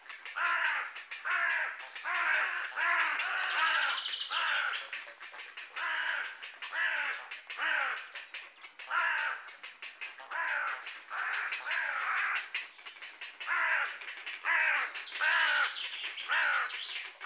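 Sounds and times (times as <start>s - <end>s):
Carrion crow Corvus corone cawing: 0.3s - 5.0s, 5.7s - 8.2s, 8.8s - 9.6s, 10.2s - 12.6s, 13.4s - 17.2s.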